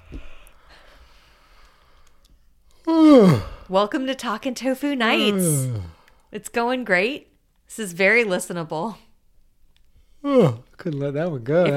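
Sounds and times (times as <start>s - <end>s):
person yawning: 2.8s - 3.7s, 5.2s - 6.0s, 10.2s - 10.7s
speech: 3.1s - 9.0s, 10.2s - 11.7s.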